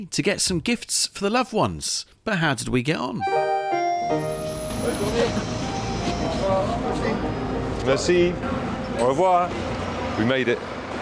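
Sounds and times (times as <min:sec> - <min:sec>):
speech: 0:00.0 - 0:03.4, 0:04.1 - 0:10.7
bus engine rumble on a ride into La Rochelle France: 0:04.2 - 0:11.0
bus road noise: 0:04.2 - 0:11.0
indistinct voices murmuring: 0:04.6 - 0:10.7.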